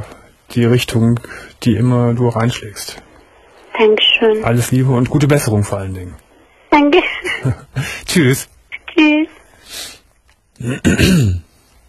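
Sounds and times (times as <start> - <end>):
speech: 0.5 - 3.1, 3.8 - 9.2, 10.6 - 11.4
person coughing and clearing their throat: 10.6 - 11.5.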